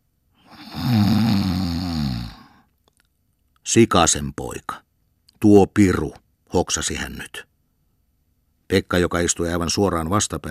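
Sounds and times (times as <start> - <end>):
man asleep sitting on a bench snoring deep and raspy: 0.5 - 2.6
speech: 3.7 - 4.8, 5.4 - 7.5, 8.7 - 10.5.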